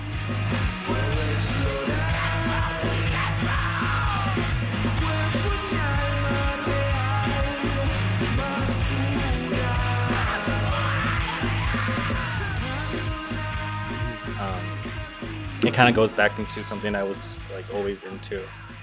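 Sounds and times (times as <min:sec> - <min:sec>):
distorted guitars in a screamo emo rock song: 0:00.0 - 0:18.8
harsh screamed vocal in a screamo emo rock song: 0:00.9 - 0:06.2, 0:09.5 - 0:13.8
speech: 0:15.8 - 0:18.7.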